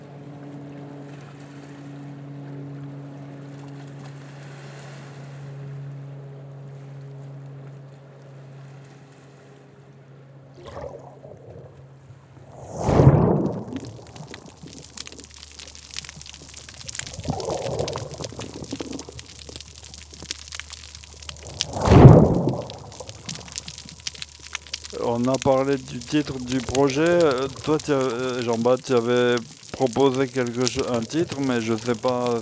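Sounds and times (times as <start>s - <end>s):
large ocean waves crashing: 12.4s - 32.4s
speech: 25.2s - 32.4s.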